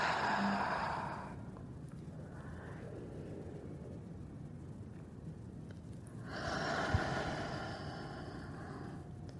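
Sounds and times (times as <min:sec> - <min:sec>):
slow deep breathing in through the nose and out through the mouth: 0:00.0 - 0:04.0, 0:06.1 - 0:09.3.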